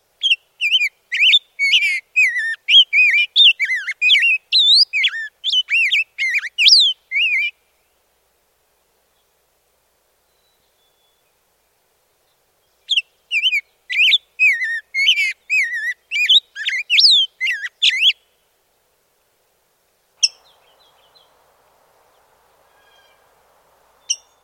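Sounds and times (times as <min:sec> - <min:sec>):
rose-breasted grosbeak: 0:00.2 - 0:07.5, 0:12.6 - 0:18.2, 0:20.2 - 0:21.4, 0:22.1 - 0:23.3, 0:24.0 - 0:24.4.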